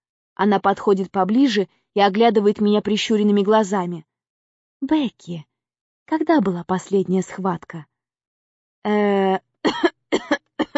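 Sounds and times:
speech: 0.4s - 4.1s, 4.8s - 5.5s, 6.1s - 7.9s, 8.8s - 9.4s
narrator voicing a coughing fit: 9.7s - 10.7s.

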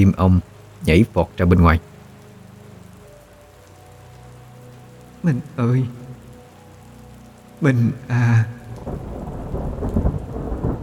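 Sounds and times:
speech: 0.0s - 1.9s, 5.2s - 6.0s, 7.6s - 9.1s
steady hiss of rain in a night rainstorm: 0.0s - 10.8s
thunder rumbling in a night rainstorm: 7.7s - 10.8s.

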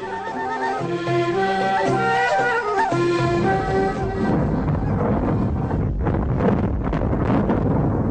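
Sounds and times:
steady tonal sound: 0.0s - 7.2s
dynamite blast inside a tunnel: 4.0s - 8.0s.

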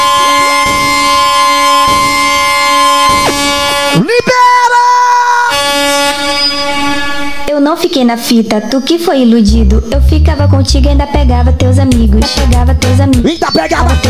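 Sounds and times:
air horn sound effect in a live DJ set: 0.0s - 4.2s, 5.3s - 7.6s
speech: 7.8s - 14.0s.

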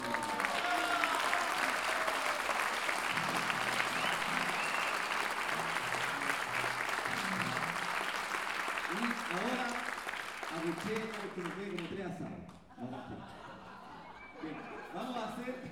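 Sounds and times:
audience applause at a folk singing and improvised verse event: 0.0s - 11.9s
speech: 11.4s - 13.4s
laughter: 12.7s - 15.7s.

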